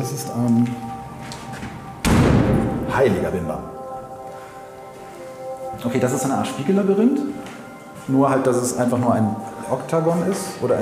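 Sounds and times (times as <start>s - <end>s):
speech: 0.0s - 0.9s, 3.0s - 3.8s, 5.8s - 7.5s, 8.1s - 10.7s
heavy door of a cabinet of curiosities exhibit shutting: 1.6s - 3.1s.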